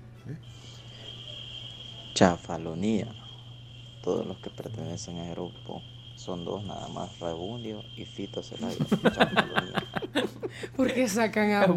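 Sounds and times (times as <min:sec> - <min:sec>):
low constant hum: 0:00.0 - 0:11.7
cicadas buzzing: 0:00.3 - 0:11.7
speech: 0:02.2 - 0:03.2, 0:04.0 - 0:11.7
laughter: 0:08.6 - 0:11.7.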